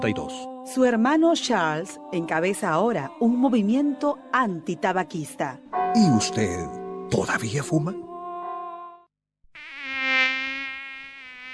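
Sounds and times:
speech: 0.0s - 8.1s
mosquito buzzing: 9.5s - 11.5s.

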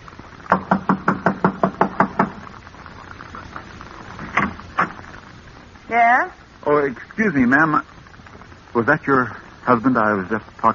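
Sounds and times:
firm knocks on a wooden door: 0.5s - 2.4s
speech: 5.9s - 7.9s, 8.7s - 10.7s.

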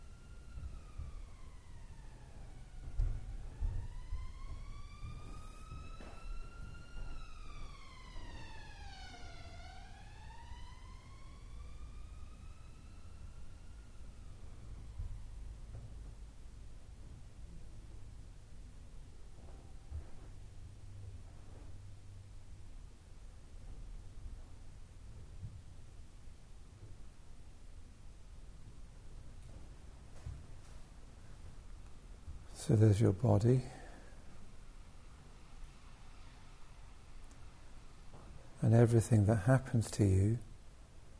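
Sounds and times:
emergency vehicle siren wailing: 0.0s - 18.2s
speech: 32.7s - 33.8s, 38.7s - 40.5s.

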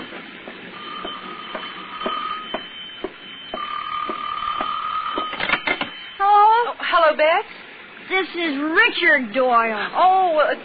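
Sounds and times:
telephone bell ringing: 0.8s - 6.4s
speech: 8.4s - 10.6s.

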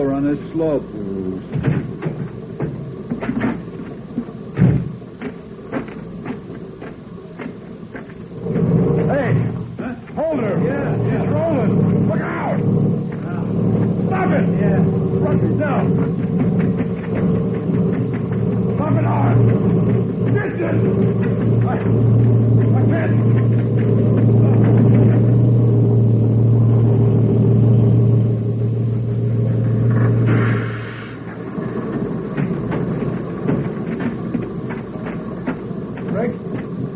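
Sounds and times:
voices: 0.0s - 4.9s, 7.4s - 25.6s, 30.0s - 36.7s
truck heavy engine rumbling: 0.0s - 36.9s
speech: 0.2s - 1.7s.

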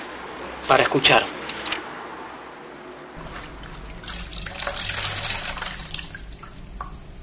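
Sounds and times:
speech: 0.7s - 1.3s
wet floor cloth wrung out: 3.2s - 7.1s
water trickling and dripping from a wet floor cloth: 3.2s - 7.2s.

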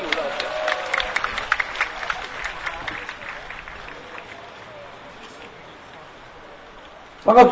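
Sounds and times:
crowd applauding: 0.0s - 5.8s
speech: 7.2s - 7.5s.

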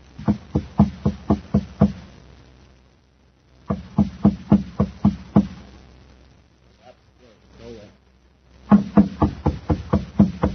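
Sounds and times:
man knocking rapidly at a door at the top of a stairway: 0.2s - 2.0s, 3.7s - 5.6s, 8.7s - 10.5s
faint voice: 6.8s - 8.0s.

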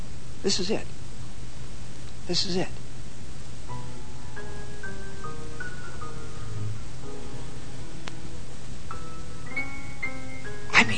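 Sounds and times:
steady hiss: 0.0s - 10.9s
speech: 0.4s - 1.0s, 2.3s - 2.8s
soft cocktail lounge music from a played recording: 3.6s - 10.9s.

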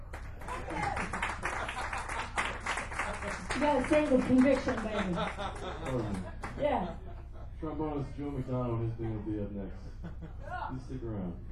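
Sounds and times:
audience applause for two performers at the end of a show: 0.0s - 6.6s
laughter: 0.5s - 10.8s
speech: 3.6s - 7.0s, 7.6s - 11.5s.

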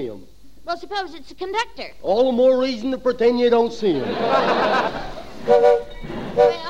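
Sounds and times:
speech: 0.0s - 5.8s
laughter: 3.9s - 5.5s
train whistle blasts as the train arrives at a station: 5.5s - 6.6s.

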